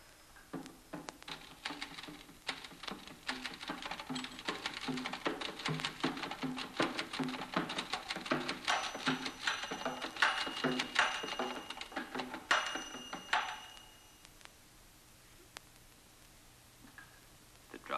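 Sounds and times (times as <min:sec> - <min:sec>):
typewriter keys clattering: 0:01.3 - 0:13.8.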